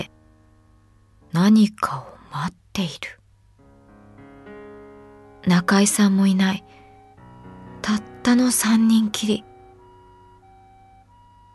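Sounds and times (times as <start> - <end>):
speech: 1.4 - 3.2, 5.4 - 6.8, 7.8 - 9.5
distant ambulance siren with two alternating tones: 5.4 - 11.5.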